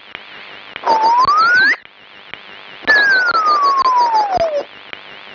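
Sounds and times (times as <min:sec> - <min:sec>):
descramble: 0:00.8 - 0:01.8, 0:02.9 - 0:04.7.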